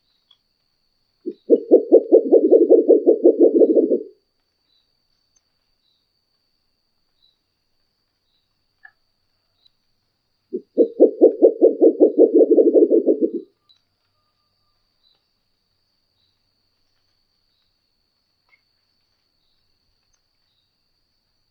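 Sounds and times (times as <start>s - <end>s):
Murucutu owl calling: 1.3s - 4.1s, 10.6s - 13.4s.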